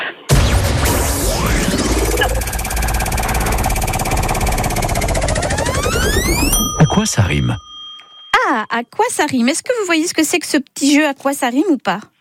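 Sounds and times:
rising electronic sweeps and tones: 0.3s - 7.0s
game show prize wheel spinning and clicking: 2.7s - 8.4s
speech: 7.0s - 7.7s, 8.8s - 12.1s.

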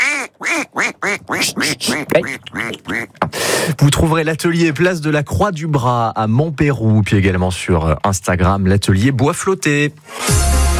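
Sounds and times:
duck quacking: 0.0s - 3.2s
speech: 0.4s - 10.7s.

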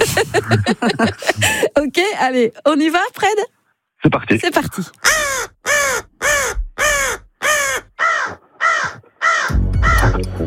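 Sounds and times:
laughter: 0.0s - 1.8s
speech: 0.0s - 10.4s
crow cawing: 5.0s - 10.2s.

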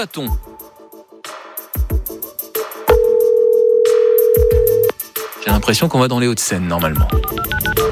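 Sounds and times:
speech: 0.0s - 0.5s, 5.5s - 7.9s
telephone ringing tone: 2.9s - 4.9s.

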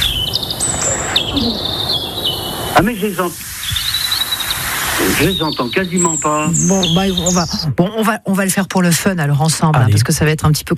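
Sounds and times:
European robin song: 0.0s - 8.0s
faint hiss: 0.0s - 10.3s
speech: 1.4s - 1.7s, 2.8s - 3.5s, 5.0s - 10.7s.

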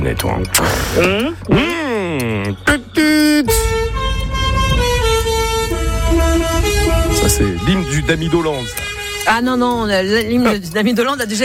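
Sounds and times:
speech: 0.0s - 4.0s, 7.2s - 11.4s
loud truck horn honking: 2.5s - 10.2s
rumbling engine noise: 3.5s - 9.9s.

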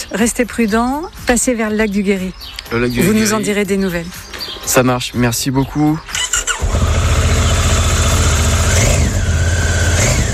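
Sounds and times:
speech: 0.1s - 6.2s
motorcycle engine starting and idling: 6.2s - 10.3s.

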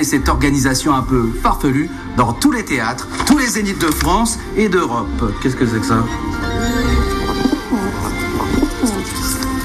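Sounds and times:
speech: 0.0s - 6.8s
pigeon cooing: 6.8s - 9.5s.

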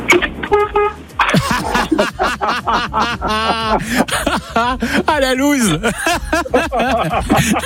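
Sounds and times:
car horn honking: 0.0s - 1.3s
people chuckling: 1.2s - 7.6s
speech: 4.7s - 7.6s.

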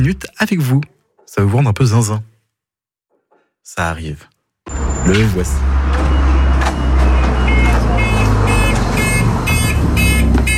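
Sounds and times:
speech: 0.0s - 2.3s, 3.6s - 6.2s
bus electronic warning beeps: 4.7s - 10.5s.

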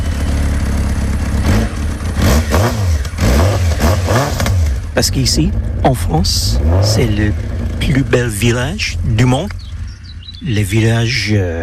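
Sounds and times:
motorcycle engine idling and revving: 0.0s - 11.6s
speech: 5.0s - 9.6s, 10.4s - 11.6s.

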